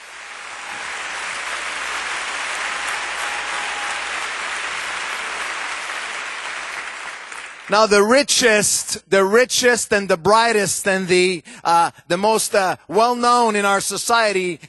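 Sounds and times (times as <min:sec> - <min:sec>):
large audience applauding: 0:00.0 - 0:08.0
speech: 0:07.7 - 0:14.6.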